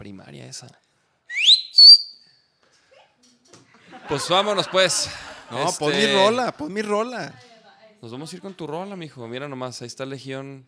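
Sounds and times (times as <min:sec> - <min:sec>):
speech: 0:00.2 - 0:00.9, 0:02.0 - 0:10.6
shrill microphone feedback whistle: 0:01.3 - 0:02.3
laughter: 0:03.7 - 0:06.4.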